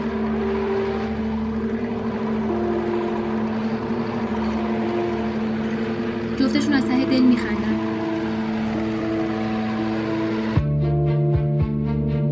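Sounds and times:
engine drone with strong low harmonic hum: 0:00.0 - 0:12.3
speech: 0:06.5 - 0:07.9.

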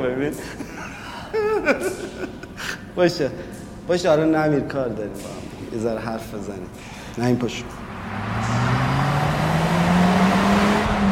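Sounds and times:
speech: 0:00.0 - 0:00.7, 0:01.4 - 0:07.8
laughter: 0:00.4 - 0:02.9
road and tire noise: 0:07.2 - 0:11.1
car engine drone at high speed: 0:07.4 - 0:11.1.

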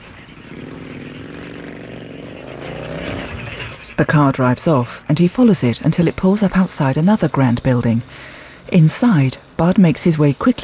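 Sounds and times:
motorbike engine running: 0:00.0 - 0:04.2
speech: 0:04.0 - 0:10.6.

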